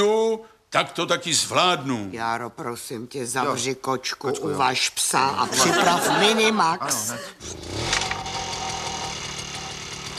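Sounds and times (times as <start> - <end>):
speech: 0.0 - 8.1
laughter: 5.4 - 7.4
small ride-on lawn mower engine running: 7.5 - 10.1.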